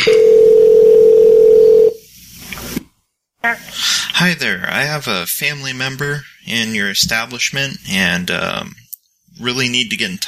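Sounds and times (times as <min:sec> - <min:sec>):
telephone dial tone at the start of a phone call: 0:00.1 - 0:02.0
speech: 0:04.2 - 0:08.8, 0:09.4 - 0:10.2.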